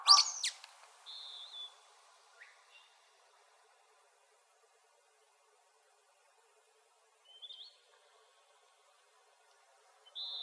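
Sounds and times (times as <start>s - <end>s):
Sulphur-bellied flycatcher giving a loud shrill rising squeal in Arizona: 0.1s - 0.6s
Sulphur-bellied flycatcher thin whistles in Arizona: 0.1s - 1.8s, 10.1s - 10.4s.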